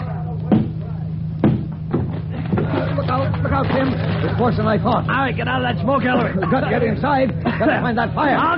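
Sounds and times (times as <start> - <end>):
steady low rumbling background: 0.0 - 8.5
heavy blunt thuds forcing a door open: 1.4 - 2.7
speech: 3.6 - 8.5
laughter: 5.9 - 8.5.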